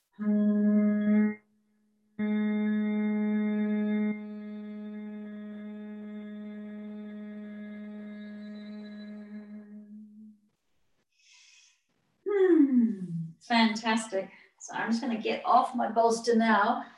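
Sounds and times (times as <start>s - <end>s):
person humming a low steady buzzing tone in humming bee breath: 0.2s - 1.4s, 2.2s - 10.3s, 12.3s - 13.4s
soft breath in: 11.2s - 11.8s
speech: 13.7s - 16.9s.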